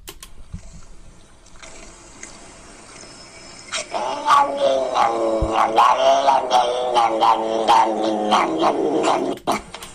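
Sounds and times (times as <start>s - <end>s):
cat growling and yowling: 3.8s - 9.4s.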